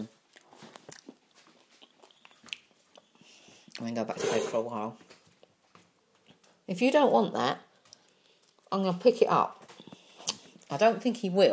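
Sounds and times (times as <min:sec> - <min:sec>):
person chewing a crisp cookie: 0:00.0 - 0:03.9, 0:05.4 - 0:06.6, 0:07.8 - 0:08.7, 0:09.7 - 0:10.7
soft mouth noises: 0:00.3 - 0:04.6, 0:09.8 - 0:10.7
speech: 0:03.8 - 0:05.1, 0:06.7 - 0:07.7, 0:08.7 - 0:09.6, 0:10.7 - 0:11.5.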